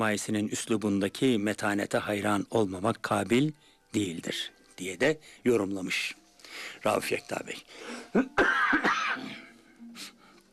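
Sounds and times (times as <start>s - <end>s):
speech: 0.0s - 9.3s
person coughing: 8.1s - 9.5s.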